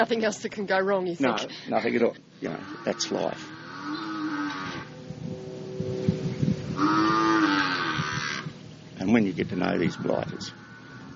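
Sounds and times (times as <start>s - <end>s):
speech: 0.0s - 4.2s, 9.0s - 10.6s
farm noise: 0.0s - 11.1s
cows mooing: 2.5s - 8.6s, 9.6s - 11.1s.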